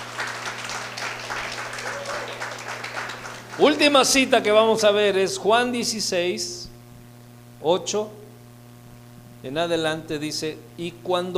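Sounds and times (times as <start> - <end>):
congregation applauding during a church service: 0.0 - 4.6
speech: 3.6 - 6.6, 7.6 - 8.2, 9.4 - 11.3.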